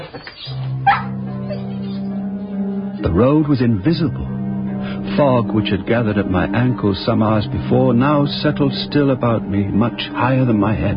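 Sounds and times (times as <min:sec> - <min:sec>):
speech: 0:00.1 - 0:01.2, 0:03.0 - 0:04.4, 0:05.2 - 0:10.9
dog yipping with a whimpering edge: 0:00.2 - 0:02.1.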